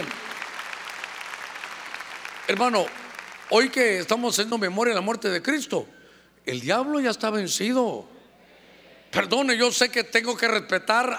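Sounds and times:
audience applauding loudly: 0.0s - 3.9s
speech: 2.5s - 8.2s, 9.1s - 11.1s.

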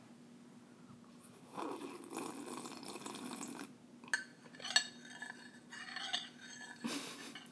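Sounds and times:
spoon stirring coffee in a cup: 1.6s - 6.8s.

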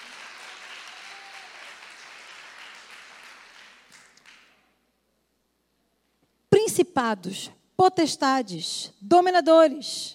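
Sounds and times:
audience applause during a church sermon: 0.0s - 4.6s
speech: 6.8s - 10.1s.

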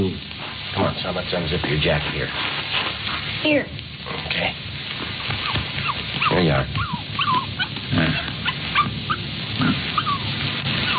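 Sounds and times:
speech: 0.0s - 4.6s, 6.3s - 6.9s
steady noisy background: 0.0s - 10.9s
female puppy whimpering and yipping: 5.3s - 7.8s, 8.4s - 9.3s, 9.9s - 10.9s.

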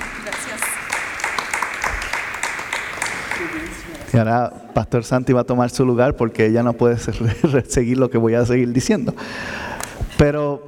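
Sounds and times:
audience applause: 0.0s - 4.2s
speech: 3.4s - 10.6s.

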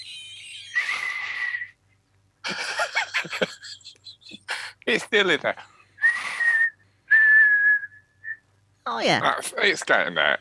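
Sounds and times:
laughter: 0.0s - 1.6s, 2.4s - 4.7s
short breathy whistles: 0.7s - 1.8s, 6.0s - 8.5s
speech: 4.9s - 5.7s, 8.9s - 10.3s.

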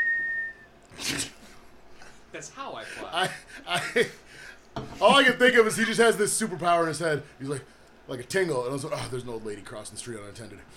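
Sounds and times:
high-pitched whistle imitating a butt whistle: 0.0s - 0.7s
speech: 2.3s - 10.7s.

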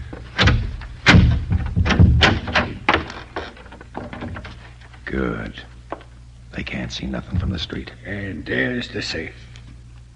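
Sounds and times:
snap-locked door being worked open: 0.0s - 4.7s
speech: 5.1s - 5.7s, 6.6s - 9.5s.

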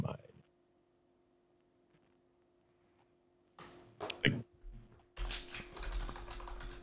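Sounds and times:
rapid keyboard typing: 5.2s - 6.8s.

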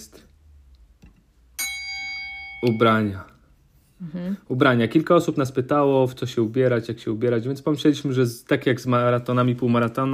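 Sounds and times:
single bright bell ding: 1.6s - 3.0s
speech: 2.6s - 3.3s, 4.0s - 10.1s.

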